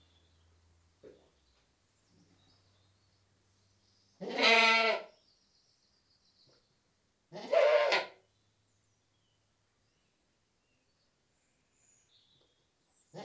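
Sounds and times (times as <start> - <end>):
British goat bleating: 4.2 - 5.1, 7.3 - 8.2.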